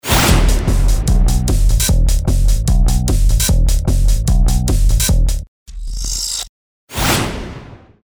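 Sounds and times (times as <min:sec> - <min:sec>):
stagger beat: 0:00.0 - 0:05.5.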